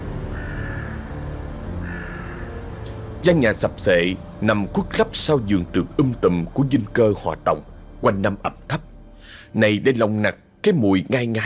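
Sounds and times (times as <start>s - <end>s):
crows cawing mournfully: 0.0s - 3.1s
dense continuous low rumbling background: 0.0s - 11.4s
speech: 3.2s - 8.9s, 9.5s - 11.4s.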